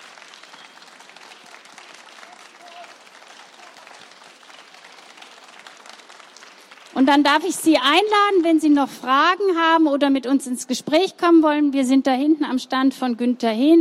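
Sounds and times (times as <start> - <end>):
audience applause for pianist: 0.0 - 8.0
speech: 7.0 - 13.7.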